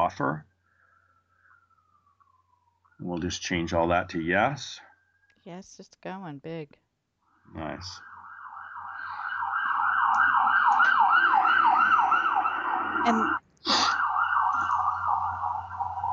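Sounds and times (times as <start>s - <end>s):
ambulance siren wailing as the ambulance goes by: 0.0s - 4.8s, 7.6s - 16.1s
speech: 0.1s - 0.5s, 3.0s - 6.8s, 7.5s - 8.1s, 13.0s - 13.8s
traffic rumble: 3.0s - 4.8s, 7.5s - 8.0s, 8.7s - 16.1s.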